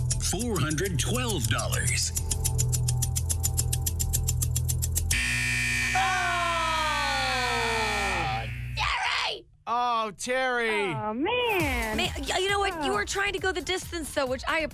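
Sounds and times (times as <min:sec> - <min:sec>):
rapid steady ticking beeps: 0:00.0 - 0:05.4
speech: 0:00.3 - 0:02.7, 0:09.7 - 0:14.7
game show buzzer: 0:05.1 - 0:08.8
falling electronic tone: 0:05.2 - 0:08.8.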